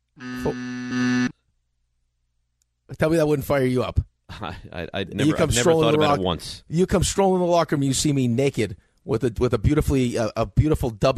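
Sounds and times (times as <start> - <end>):
speech: 0.2 - 1.1, 3.0 - 11.1
harsh buzzer with droning tone: 0.2 - 1.3.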